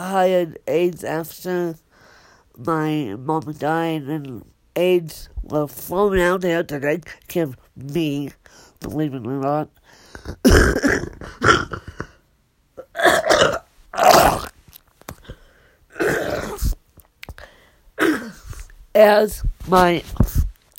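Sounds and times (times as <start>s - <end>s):
speech: 0.0s - 1.8s, 2.6s - 11.8s, 19.0s - 20.2s
person in a coughing fit with harsh coughs: 10.1s - 12.2s, 12.8s - 14.4s, 15.2s - 16.8s, 18.0s - 18.7s
throat clearing: 10.2s - 12.2s, 16.0s - 16.8s, 18.0s - 18.7s.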